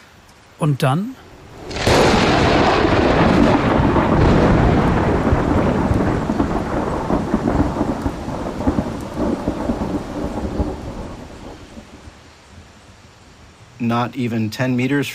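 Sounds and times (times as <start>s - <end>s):
steady heavy rain: 0.0s - 15.1s
speech: 0.6s - 1.2s, 13.9s - 15.1s
loud crack of thunder rolling and rumbling: 1.4s - 12.2s.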